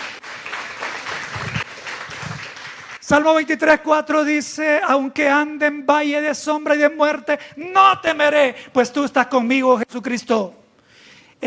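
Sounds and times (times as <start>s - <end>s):
audience applauding at a religious gathering: 0.0s - 3.7s
speech: 3.1s - 10.6s.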